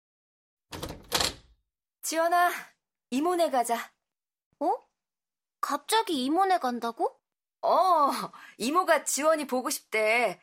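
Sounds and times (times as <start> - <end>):
door handle and latch releasing: 0.7 - 1.5
room door opening with creak and clunk: 0.7 - 1.6
speech: 2.0 - 4.0, 4.6 - 4.9, 5.6 - 10.4.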